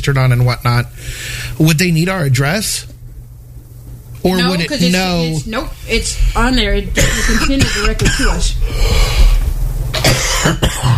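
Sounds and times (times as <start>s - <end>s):
speech: 0.0s - 2.9s, 4.2s - 9.2s, 10.2s - 10.9s
low steady hum: 0.0s - 10.9s
person coughing: 7.0s - 8.6s, 9.9s - 10.9s.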